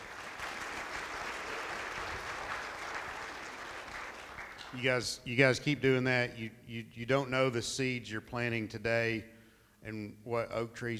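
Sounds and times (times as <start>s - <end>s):
audience applause: 0.0s - 4.9s
speech: 4.7s - 10.9s.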